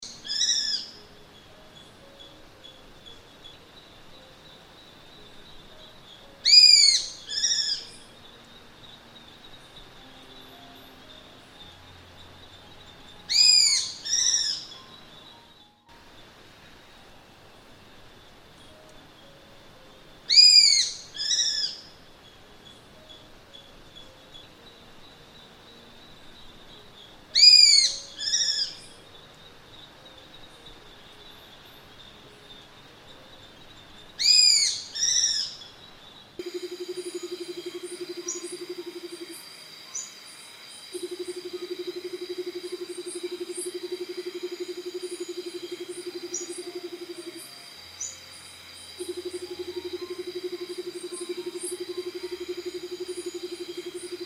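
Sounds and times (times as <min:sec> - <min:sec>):
calm night forest ambience: 0:00.0 - 0:54.2
mystical owl hooting in a calm night forest: 0:06.4 - 0:07.8, 0:13.3 - 0:14.6, 0:20.3 - 0:21.8, 0:27.4 - 0:28.7, 0:36.4 - 0:39.4, 0:41.0 - 0:47.4, 0:49.0 - 0:54.2.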